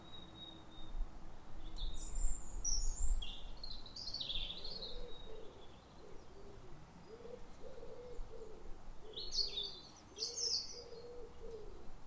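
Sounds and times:
European robin Erithacus rubecula singing: 0.0 - 1.0, 1.6 - 12.0
low hooting or cooing notes: 4.5 - 12.0.

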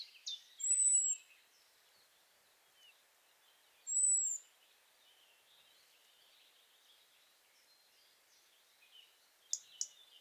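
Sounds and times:
European robin giving whistled calls: 0.0 - 1.3, 3.8 - 4.5, 9.5 - 10.1
background bird chatter: 0.0 - 10.1.

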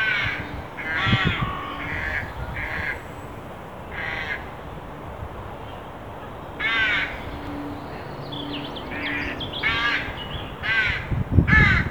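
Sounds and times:
carrion crow (Corvus corone) giving harsh caws: 0.0 - 3.0, 3.9 - 4.6, 6.6 - 11.8.

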